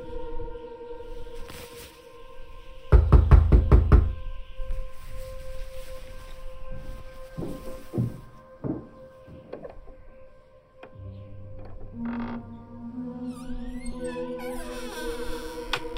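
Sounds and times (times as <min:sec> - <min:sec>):
firm knocking on a front door: 0:02.9 - 0:04.2.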